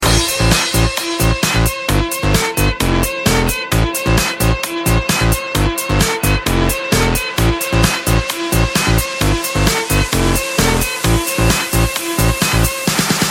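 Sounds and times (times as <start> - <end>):
electric violin: 0.0 - 13.0.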